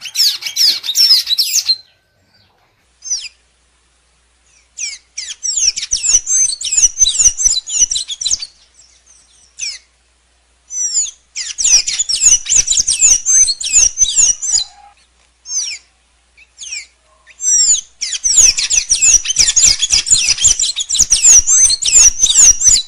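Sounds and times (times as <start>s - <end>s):
blue dacnis song with high squeaky twitters and chirps: 0.0s - 3.4s, 4.5s - 9.9s, 10.7s - 22.8s.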